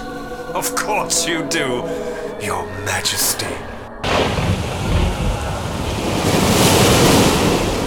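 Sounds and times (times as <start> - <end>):
speech: 0.5 - 4.4
rough roaring stormy surf crashing: 4.0 - 7.8
strong wind gusts buffeting: 4.0 - 7.8.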